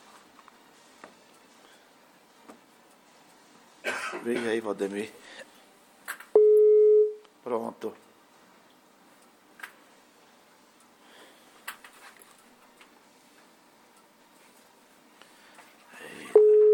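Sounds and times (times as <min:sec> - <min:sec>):
faint scattered clicks and rustles: 0:00.0 - 0:03.8, 0:07.9 - 0:16.0
speech: 0:04.2 - 0:05.5, 0:07.4 - 0:08.0
phone call tone of a WhatsApp call: 0:06.4 - 0:07.2, 0:16.3 - 0:16.7.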